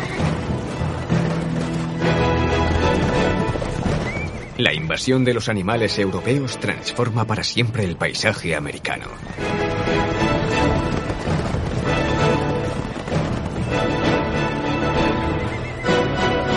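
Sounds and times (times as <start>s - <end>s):
horses neighing: 0.0s - 5.1s, 8.9s - 16.4s
speech: 4.6s - 10.6s.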